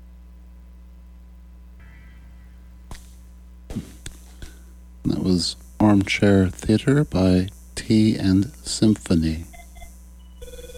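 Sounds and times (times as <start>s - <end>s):
low hum: 0.0s - 10.7s
speech: 5.0s - 9.5s
faint electronic telephone ringing: 9.5s - 10.7s.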